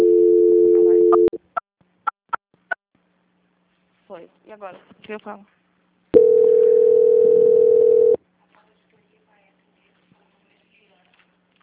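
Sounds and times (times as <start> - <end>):
steady telephone tone during call transfer: 0.0 - 1.4, 6.2 - 8.2
speech: 4.2 - 5.6.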